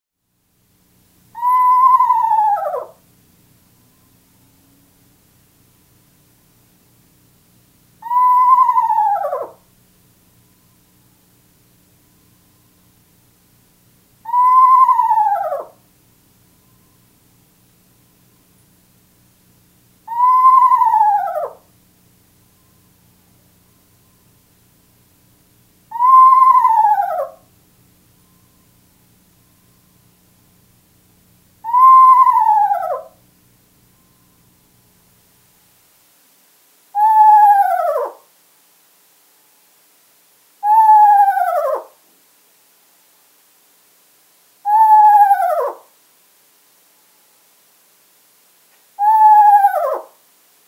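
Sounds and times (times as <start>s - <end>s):
Eastern screech owl calling: 1.3s - 3.0s, 8.0s - 9.7s, 14.2s - 15.8s, 20.0s - 21.7s, 25.9s - 27.5s, 31.6s - 33.2s, 36.9s - 38.3s, 40.6s - 42.0s, 44.6s - 45.9s, 49.0s - 50.2s.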